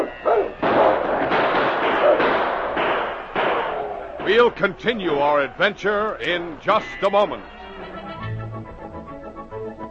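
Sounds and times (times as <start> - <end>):
rifle fire during a siege of a frontier post: 0.6 - 4.4
speech: 4.3 - 7.6.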